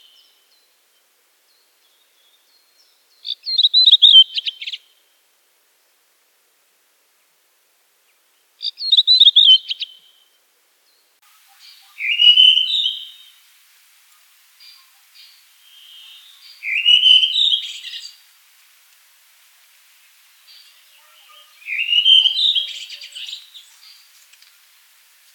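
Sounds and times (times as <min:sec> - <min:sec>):
redwing calling: 0:03.3 - 0:04.8, 0:08.6 - 0:10.1, 0:11.3 - 0:13.4, 0:14.1 - 0:18.3, 0:20.4 - 0:24.5.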